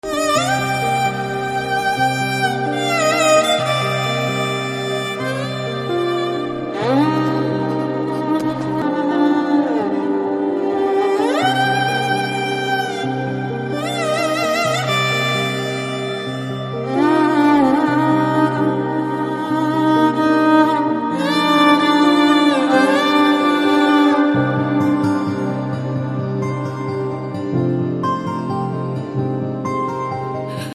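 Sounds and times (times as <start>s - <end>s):
violin background music: 0.0s - 30.7s.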